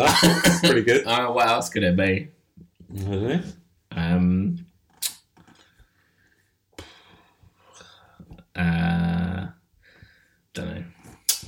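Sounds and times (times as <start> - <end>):
deep rumbling loud burp: 0.0 - 0.7
speech: 0.0 - 4.6, 8.6 - 9.6, 10.6 - 11.4.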